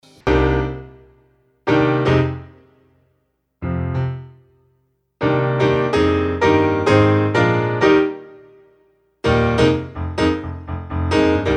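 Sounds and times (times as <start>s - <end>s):
dry pop piano: 0.0s - 2.8s, 3.6s - 4.6s, 5.2s - 11.5s.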